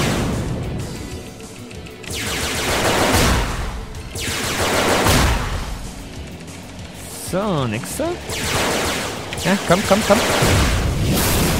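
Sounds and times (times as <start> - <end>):
dense noisy video game soundscape: 0.0 - 11.5
video game cannon blasts with rushing roar: 2.1 - 5.9, 8.3 - 11.5
speech: 7.4 - 8.8, 9.4 - 11.1.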